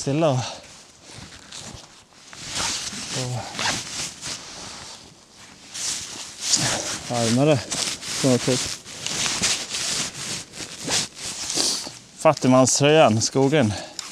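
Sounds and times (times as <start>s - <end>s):
speech: 0.0s - 0.6s, 3.2s - 3.9s, 7.1s - 8.8s, 12.2s - 13.9s
fabric rustling as clothing is adjusted outdoors in a forest: 0.6s - 12.2s
scuffs: 1.0s - 12.0s
zipper pulls on clothing outdoors in a windless forest: 1.1s - 5.0s, 5.7s - 12.0s.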